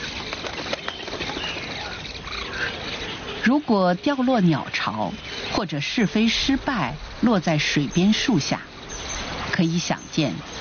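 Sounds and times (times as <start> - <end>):
fledgling egrets flapping wings leaving nests in tall trees: 0.0 - 3.5
speech: 3.4 - 8.7, 9.6 - 10.5.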